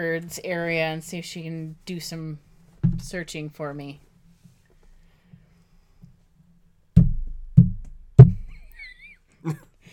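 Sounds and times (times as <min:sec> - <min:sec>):
speech: 0:00.0 - 0:04.1, 0:09.4 - 0:09.6
hand knocking on a hard surface imitating peg-leg footsteps: 0:07.0 - 0:08.6.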